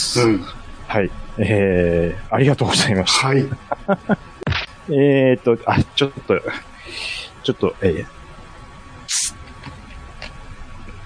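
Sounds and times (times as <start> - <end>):
speech: 0.1 - 8.2
laughter: 3.2 - 4.7
carbonated drink bottle cap twisted open with carbonation hiss: 9.1 - 9.4.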